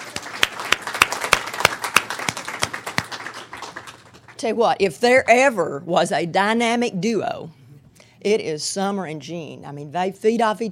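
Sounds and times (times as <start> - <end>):
small audience applause: 0.0 - 4.4
speech: 4.4 - 7.6, 8.2 - 10.7.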